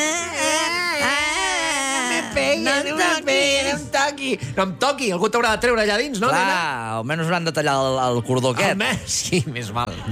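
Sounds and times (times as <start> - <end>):
voice performing exaggerated affected crying as a newborn's wail: 0.0 - 3.8
speech: 2.6 - 10.0.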